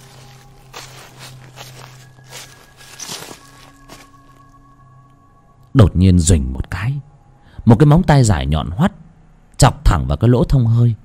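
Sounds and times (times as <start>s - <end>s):
footsteps crunching on dry leaves around a house: 0.0s - 4.6s
steady low hum: 0.0s - 9.6s
speech: 5.8s - 8.9s, 9.6s - 11.0s.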